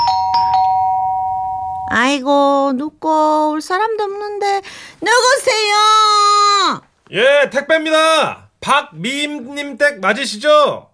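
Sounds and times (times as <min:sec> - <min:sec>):
doorbell chiming: 0:00.0 - 0:01.9
speech: 0:01.9 - 0:10.9.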